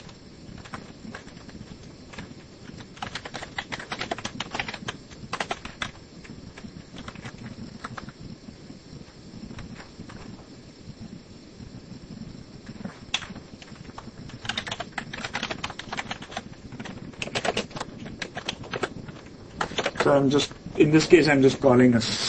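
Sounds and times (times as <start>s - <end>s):
typing on a computer keyboard: 0.0s - 8.2s, 12.7s - 20.2s
speech: 20.1s - 22.2s.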